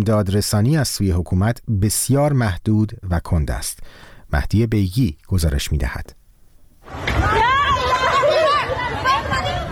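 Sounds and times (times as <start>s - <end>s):
speech: 0.0s - 6.2s
panicked crowd of flood victims in Dashtiari, Sistan and Baluchestan: 6.9s - 9.6s.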